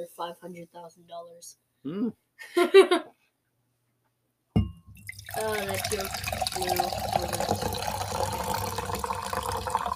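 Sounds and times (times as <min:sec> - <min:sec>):
speech: 0:00.0 - 0:03.2, 0:05.3 - 0:07.5
canned water glugging and splashing as it is poured from a can: 0:05.0 - 0:09.9.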